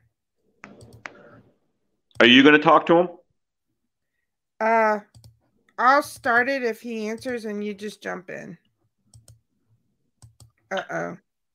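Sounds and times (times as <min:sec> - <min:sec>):
keyboard typing: 0:00.6 - 0:01.4, 0:05.0 - 0:07.6, 0:09.1 - 0:09.4, 0:10.2 - 0:10.8
speech: 0:02.2 - 0:03.2, 0:04.6 - 0:05.1, 0:05.8 - 0:08.6, 0:10.7 - 0:11.2.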